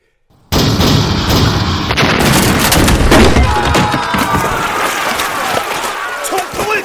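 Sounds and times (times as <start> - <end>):
Joseon jija chongtong cannon firing: 0.4 - 3.9
people shouting in battle: 3.3 - 6.8.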